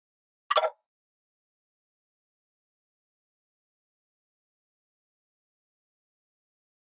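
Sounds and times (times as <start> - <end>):
buttons hitting a wooden cup: 0.5 - 0.7.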